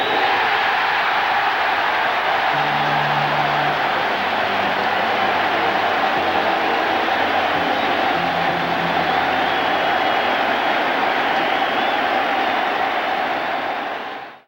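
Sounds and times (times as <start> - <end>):
baseball crowd cheering: 0.0 - 14.4
stadium organ playing at a baseball game: 2.5 - 11.7.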